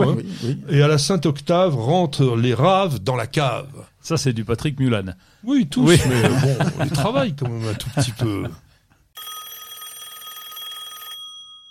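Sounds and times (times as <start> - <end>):
laughter: 0.0 - 0.6, 5.8 - 8.6
speech: 0.0 - 8.6
phone ringtone: 9.2 - 11.6.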